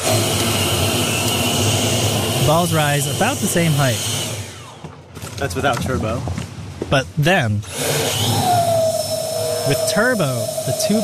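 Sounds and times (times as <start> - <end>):
electric leaf blower running: 0.0 - 5.0, 7.6 - 11.0
speech: 2.5 - 4.2, 5.4 - 8.0, 9.6 - 11.0
whistling from a ball-lifting contraption: 8.0 - 11.0.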